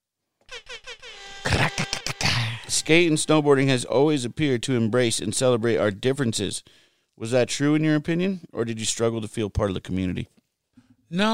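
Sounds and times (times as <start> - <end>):
air horn sound effect honks: 0.5 - 3.9
speech: 2.7 - 10.4, 11.1 - 11.3.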